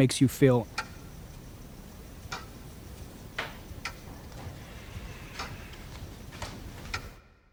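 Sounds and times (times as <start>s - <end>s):
speech: 0.0s - 0.8s
low hiss: 0.0s - 7.5s
slowed recorded clock ticking: 0.6s - 4.6s, 5.3s - 7.2s.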